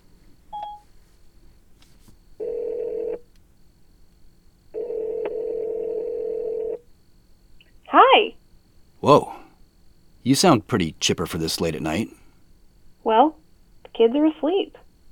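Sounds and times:
phone ringing tones: 0:02.4 - 0:03.2, 0:04.8 - 0:06.8
speech: 0:09.0 - 0:09.4, 0:10.2 - 0:12.2, 0:14.0 - 0:14.8.

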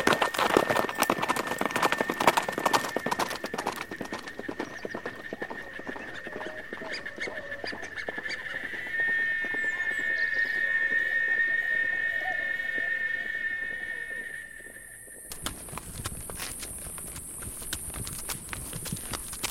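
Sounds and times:
horse hooves clip-clopping in a brisk trot: 0:00.0 - 0:12.1, 0:15.2 - 0:19.4
sustained high whistling tone: 0:00.0 - 0:15.4
ambience: 0:00.0 - 0:19.4.

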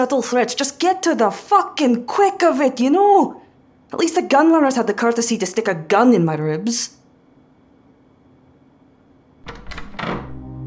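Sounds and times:
speech: 0:00.0 - 0:07.0
heavy doors creaking as they swing wide: 0:09.4 - 0:10.6
heavy doors clunking as pushed open: 0:09.5 - 0:10.5.

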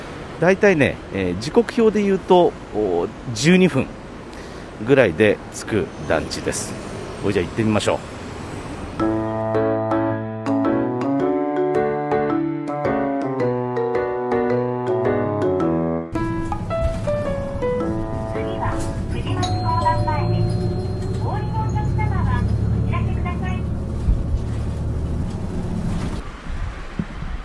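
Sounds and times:
engine rumble inside a moving bus: 0:00.0 - 0:09.5, 0:16.2 - 0:27.4
road noise from inside a moving bus: 0:00.0 - 0:11.4, 0:15.4 - 0:27.4
speech: 0:00.4 - 0:04.0, 0:04.8 - 0:08.1
gentle music: 0:09.0 - 0:22.5
chime-like tones: 0:18.3 - 0:23.4.

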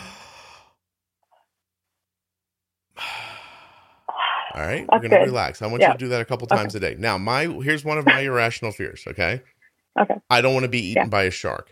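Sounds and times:
big deep breath drawn in and let out as a long sigh: 0:00.0 - 0:00.8, 0:03.0 - 0:04.6
speech: 0:04.6 - 0:11.7.

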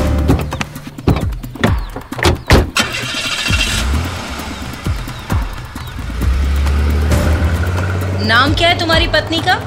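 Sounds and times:
sharp clattering knocks of a jeep: 0:00.2 - 0:02.8
jeep engine starting and rumbling: 0:02.4 - 0:09.6
speech: 0:08.5 - 0:09.6.

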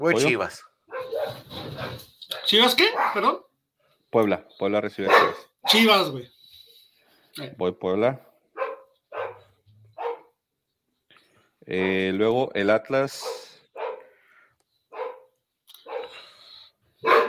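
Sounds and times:
speech: 0:00.0 - 0:00.7, 0:01.3 - 0:03.4, 0:04.1 - 0:06.4, 0:07.4 - 0:08.3, 0:11.6 - 0:13.4
dogs barking: 0:00.9 - 0:02.0, 0:02.8 - 0:03.4, 0:05.0 - 0:05.8, 0:08.5 - 0:10.4, 0:13.2 - 0:14.2, 0:14.9 - 0:16.2, 0:17.0 - 0:17.2.

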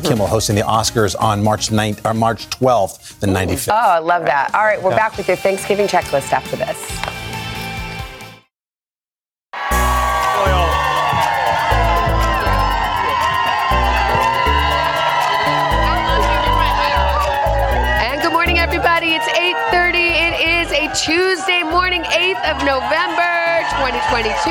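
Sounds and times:
speech: 0:00.0 - 0:07.3, 0:21.0 - 0:24.5
large outdoor crowd cheering and whooping: 0:09.6 - 0:24.5
steady thumping beat: 0:09.7 - 0:24.5.

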